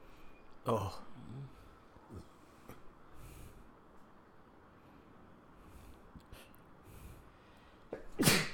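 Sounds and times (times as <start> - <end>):
speech: 0.7 - 2.3
person sneezing: 8.0 - 8.5.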